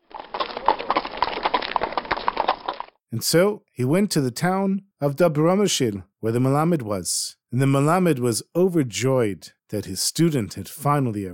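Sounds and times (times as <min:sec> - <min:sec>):
horse hooves clip-clopping: 0:00.0 - 0:03.0
speech: 0:03.1 - 0:11.3.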